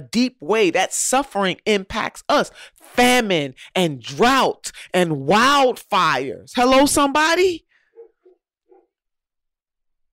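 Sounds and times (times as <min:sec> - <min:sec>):
speech: 0:00.0 - 0:07.6
neighbor's dog barking: 0:07.9 - 0:08.9.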